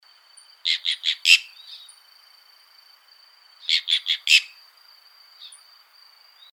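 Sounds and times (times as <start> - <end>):
green jay Cyanocorax yncas calling: 0.6 - 2.0, 3.6 - 4.7.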